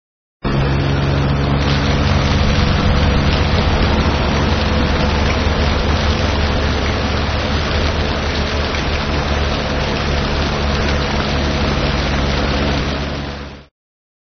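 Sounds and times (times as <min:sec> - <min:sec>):
low rumble under rain: 0:00.4 - 0:13.7
steady dense rain: 0:00.5 - 0:13.7.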